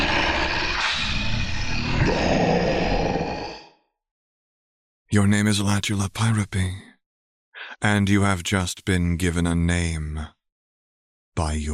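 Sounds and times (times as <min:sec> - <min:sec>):
deep gravelly dragon roar: 0:00.0 - 0:03.8
speech: 0:05.1 - 0:06.9, 0:07.8 - 0:10.4, 0:11.4 - 0:11.7.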